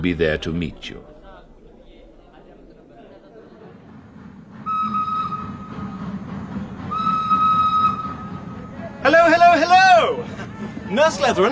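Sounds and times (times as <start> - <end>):
speech: 0.0 - 1.1, 10.9 - 11.4
train from Baghdad rumbling into the station at Kirkuk: 0.0 - 11.4
train engine chugging into the station at Kirkuk: 1.4 - 11.4
long high train whistle blasts: 4.6 - 6.0, 6.9 - 8.6.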